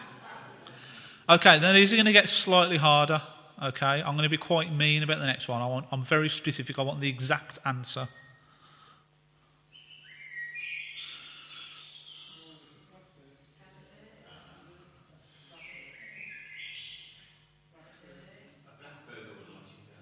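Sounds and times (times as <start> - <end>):
soft hum: 0.0 - 20.0
speech: 1.3 - 8.2
blackbird singing: 9.7 - 13.2, 15.5 - 17.6.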